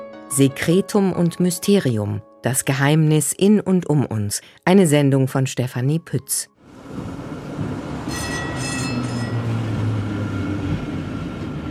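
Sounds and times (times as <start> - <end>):
speech: 0.3 - 8.2
low tram engine noise: 6.6 - 11.7
tram wheel noise: 6.7 - 11.7
high metallic squeal from tram wheels: 8.0 - 10.0.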